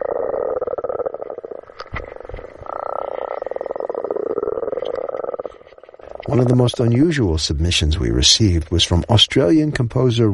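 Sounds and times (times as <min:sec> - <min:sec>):
chorus of spring frogs croaking recorded underwater: 0:00.0 - 0:07.4
speech: 0:06.3 - 0:10.3.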